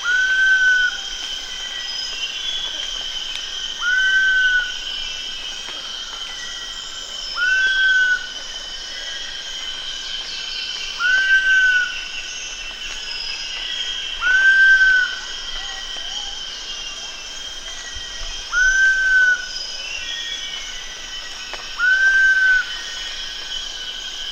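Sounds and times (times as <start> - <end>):
giant pitta repeating a mellow rising whistle at Danum: 0.0 - 1.0, 3.8 - 4.8, 7.3 - 8.4, 11.0 - 12.1, 14.1 - 16.4, 18.4 - 20.1, 21.8 - 22.7
insects droning: 0.0 - 24.3.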